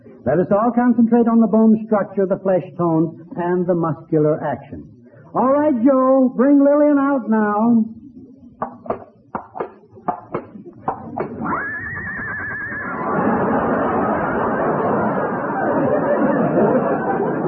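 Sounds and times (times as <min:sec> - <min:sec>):
speech: 0:00.2 - 0:08.0
crowd noise and laughter: 0:08.1 - 0:17.4
rhythmic knocks: 0:08.6 - 0:11.4
horse whinnying: 0:11.4 - 0:13.1.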